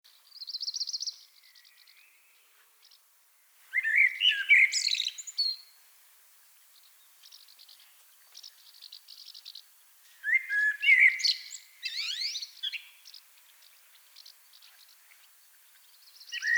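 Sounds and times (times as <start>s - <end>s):
common blackbird song: 0.2s - 3.0s, 3.8s - 5.7s, 6.8s - 16.5s.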